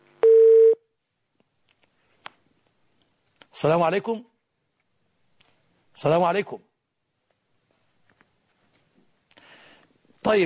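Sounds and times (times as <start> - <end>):
call-in phone line beep connecting an incoming call: 0.2 - 0.8
speech: 3.6 - 4.3, 6.0 - 6.7, 10.2 - 10.4.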